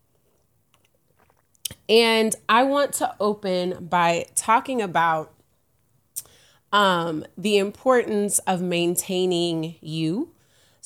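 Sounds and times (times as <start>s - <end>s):
light slurps: 0.0s - 1.9s
sipping water from a goblet: 0.0s - 1.9s
speech: 1.9s - 5.4s, 6.7s - 10.8s.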